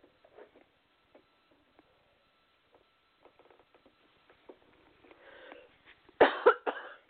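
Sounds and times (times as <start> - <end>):
harsh coughs: 6.2 - 7.0.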